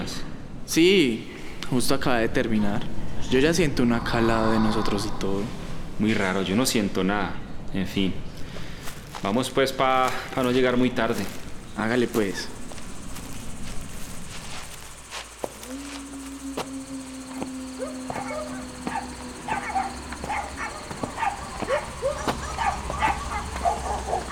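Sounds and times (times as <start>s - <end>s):
steady outdoor hum: 0.0s - 24.3s
speech: 0.7s - 8.3s, 9.2s - 12.6s
several dogs barking and yipping at two passers-by: 17.0s - 24.3s.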